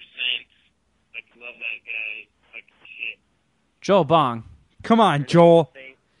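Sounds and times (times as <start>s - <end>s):
voice on a phone call, crackly and tinny like a walkie-talkie: 0.0s - 0.6s, 1.2s - 3.3s, 4.1s - 6.0s
speech: 1.4s - 5.8s.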